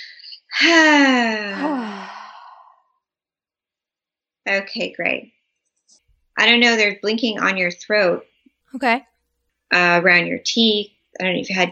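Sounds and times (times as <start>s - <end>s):
speech: 0.6s - 1.6s, 4.5s - 9.1s, 9.7s - 11.6s
person's deep breath out as a long voiced sigh: 1.5s - 2.7s
brief soft sound: 8.8s - 9.0s.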